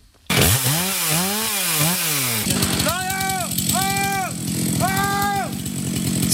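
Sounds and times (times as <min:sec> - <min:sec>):
chainsaw cutting wood during a forestry rescue exercise: 0:00.3 - 0:06.3
colleague shouting drawn-out calls: 0:02.7 - 0:05.6.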